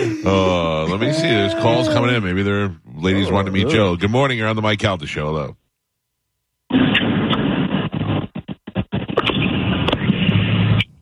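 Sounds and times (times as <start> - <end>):
speech: 0.2 - 5.6
car crash crunching and rumbling noise over a telephone line: 6.7 - 11.0.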